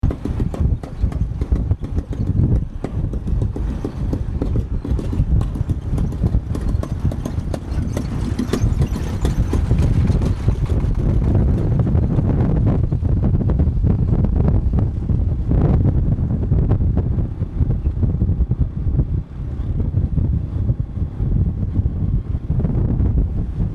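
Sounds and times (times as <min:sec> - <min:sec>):
special tractor in Vietnam: 0:00.0 - 0:12.0
wind: 0:00.0 - 0:23.7.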